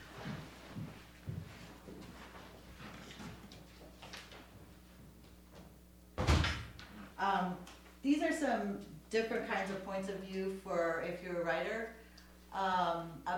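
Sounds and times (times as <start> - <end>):
door slamming shut: 6.2 - 6.8
door opening and closing: 6.2 - 6.9
speech: 7.2 - 13.3.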